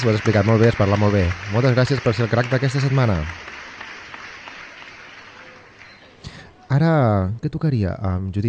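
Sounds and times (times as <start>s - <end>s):
speech: 0.0s - 3.5s, 6.7s - 8.4s
applause from a small group: 0.0s - 6.5s.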